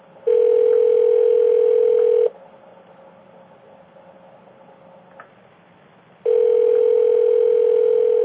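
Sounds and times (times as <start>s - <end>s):
telephone tone on the line after dialing: 0.2s - 2.3s, 6.2s - 8.2s.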